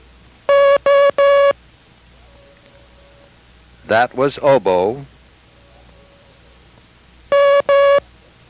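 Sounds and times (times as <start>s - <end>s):
Morse code beeps of a buzzy tone: 0.5s - 1.6s, 7.3s - 8.0s
speech: 3.9s - 5.1s.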